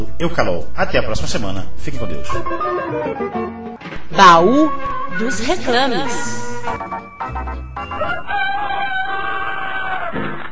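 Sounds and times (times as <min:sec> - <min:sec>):
speech: 0:00.2 - 0:03.4, 0:04.2 - 0:08.2
bright busy music: 0:01.5 - 0:08.6
rooster crowing: 0:07.9 - 0:10.4.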